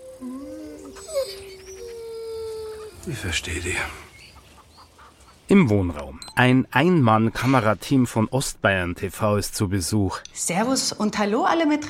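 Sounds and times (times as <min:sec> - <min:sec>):
dog whimpering and begging to get into the house: 0:00.0 - 0:03.4
speech: 0:03.1 - 0:04.0, 0:05.5 - 0:11.8.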